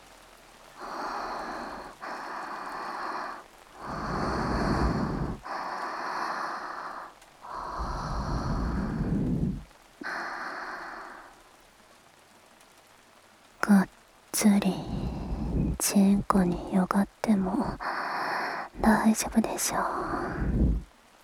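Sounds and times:
rain falling: 0.0 - 21.2
speech: 14.4 - 15.0, 15.8 - 18.0, 18.8 - 20.6.

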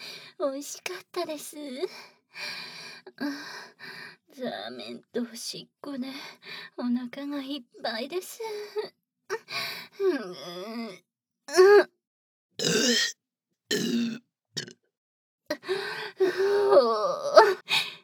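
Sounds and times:
speech: 0.4 - 11.9, 12.6 - 14.7, 15.5 - 17.9
loud croaky burps: 12.6 - 13.1, 13.7 - 14.8.

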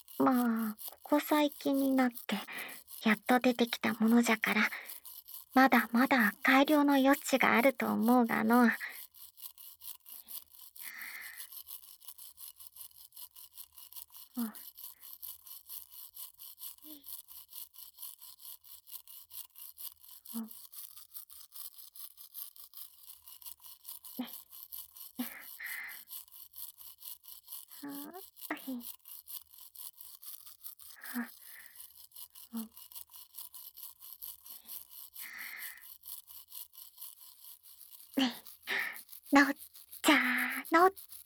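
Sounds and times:
toothbrush scrubbing teeth: 0.0 - 41.2
speech: 0.2 - 9.0, 14.4 - 14.6, 20.4 - 20.6, 27.8 - 29.0, 31.1 - 31.3, 38.2 - 38.4, 39.3 - 41.1.

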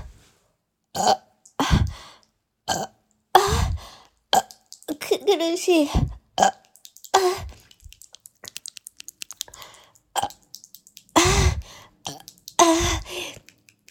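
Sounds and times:
speech: 1.0 - 1.2, 5.3 - 6.6
loud throaty burps while drinking: 1.0 - 1.3, 2.7 - 3.0
faint clicking and ticking: 4.0 - 5.1, 6.1 - 13.8.

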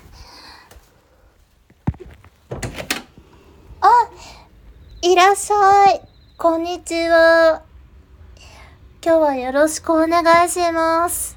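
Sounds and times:
front door rattling as it swings open: 1.9 - 3.4
front door latch click: 2.5 - 3.2
speech: 5.1 - 7.7, 9.0 - 11.3.

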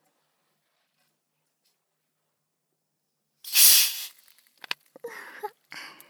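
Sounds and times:
bottle of carbonated water opened with a hiss of gas: 3.5 - 4.8.

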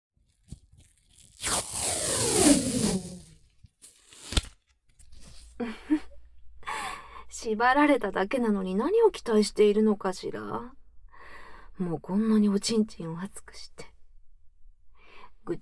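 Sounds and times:
soft tape ripping off a roll: 0.3 - 5.5
speech: 7.4 - 10.8, 11.8 - 13.9, 15.4 - 15.6.

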